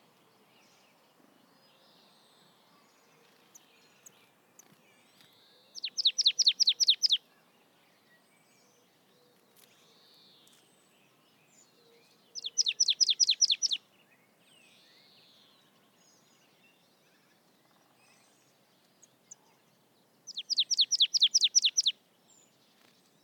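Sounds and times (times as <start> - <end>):
marsh tit Poecile palustris calling: 5.8 - 7.2, 12.4 - 13.8, 20.3 - 21.9.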